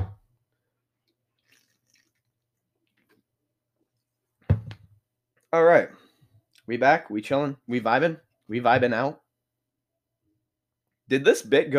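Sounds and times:
person gulping a drink: 0:01.4 - 0:03.0
speech: 0:05.5 - 0:06.0, 0:06.7 - 0:09.2, 0:11.1 - 0:11.7.

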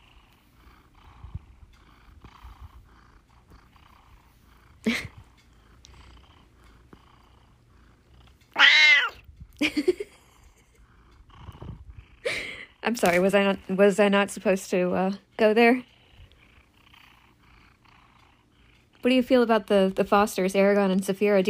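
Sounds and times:
speech: 0:04.8 - 0:05.2, 0:12.9 - 0:15.9, 0:19.0 - 0:21.4
old house cat meowing loudly: 0:08.5 - 0:09.2.

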